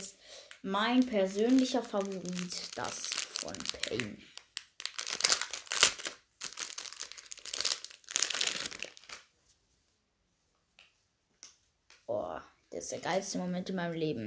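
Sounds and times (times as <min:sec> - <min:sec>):
plastic film crinkling as it is peeled off a packaged headband: 0:00.0 - 0:09.3
speech: 0:00.6 - 0:04.3, 0:12.1 - 0:14.2.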